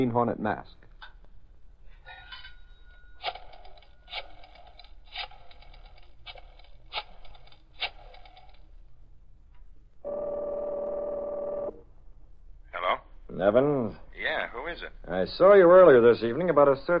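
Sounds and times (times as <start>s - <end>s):
speech: 0.0s - 0.9s, 13.4s - 16.9s
faint hiss: 0.0s - 3.2s, 8.6s - 16.9s
steady buzzing tone from the telephone line: 10.0s - 11.8s.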